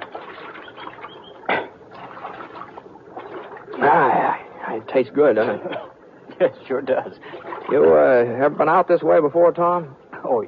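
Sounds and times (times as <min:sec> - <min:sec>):
creek water splashing as men drink from it: 0:00.0 - 0:04.7, 0:07.1 - 0:08.4
speech: 0:03.8 - 0:10.4.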